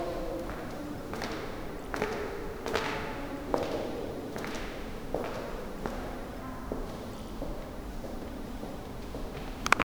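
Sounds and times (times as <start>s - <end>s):
footsteps echoing: 0.0s - 9.8s.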